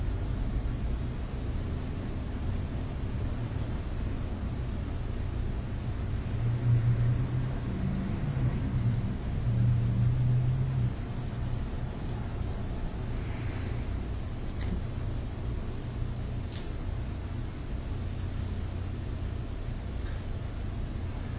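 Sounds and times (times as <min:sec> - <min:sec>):
low traffic rumble from outside: 0:00.0 - 0:21.3
cars passing by outside: 0:05.7 - 0:16.0, 0:20.5 - 0:21.3.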